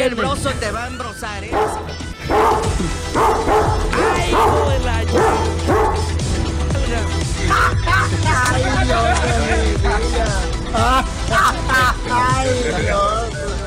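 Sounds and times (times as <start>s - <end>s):
speech: 0.0s - 2.6s
dog barking: 1.5s - 6.2s
laughter: 7.4s - 13.5s.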